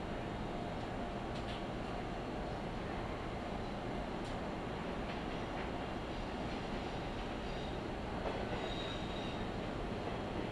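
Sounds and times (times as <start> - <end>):
local train wheels and motor rumbling inside the car: 0.1 - 10.5
light rail clicks: 4.2 - 10.5.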